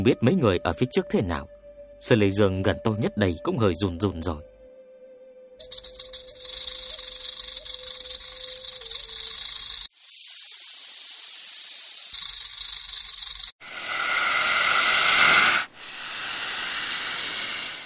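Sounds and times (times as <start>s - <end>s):
speech: 0.0s - 4.5s, 5.6s - 5.9s
snakes hissing: 5.6s - 17.8s.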